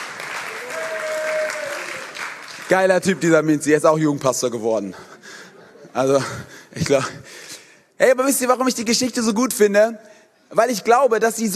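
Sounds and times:
audience applauding: 0.0s - 3.4s
speech: 2.7s - 5.1s, 6.0s - 7.3s, 8.0s - 11.5s.

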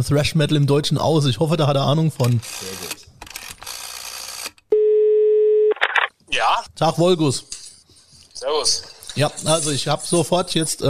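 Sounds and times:
speech: 0.0s - 3.0s, 6.8s - 7.6s, 8.4s - 10.8s
telephone ringing tone while placing a call: 4.7s - 5.9s.

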